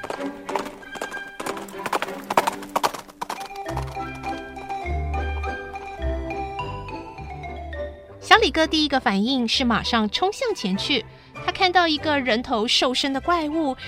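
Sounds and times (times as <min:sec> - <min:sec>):
horse hooves galloping: 0:00.0 - 0:07.3
speech: 0:08.4 - 0:13.8.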